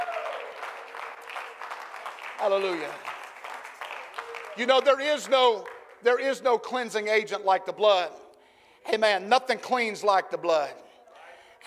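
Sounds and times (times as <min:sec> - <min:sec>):
roomful of people clapping: 0:00.0 - 0:06.3
speech: 0:02.4 - 0:03.1, 0:04.6 - 0:08.2, 0:08.8 - 0:10.8.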